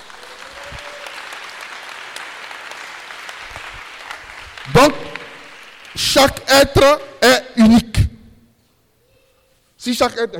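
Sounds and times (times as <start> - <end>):
congregation applauding during a prayer service: 0.0 - 6.5
speech: 4.7 - 5.0, 6.0 - 7.8, 9.8 - 10.3.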